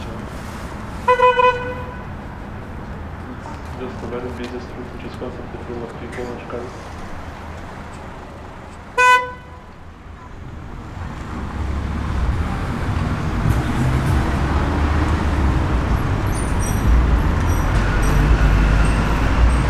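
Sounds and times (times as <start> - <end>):
busy street traffic on the Nieuwe Binnenweg rumbling: 0.0 - 19.6
higher-pitched vehicles and city activity passing: 0.0 - 19.6
sharp car horn toot: 1.0 - 2.1, 9.0 - 9.7
speech: 3.8 - 7.0.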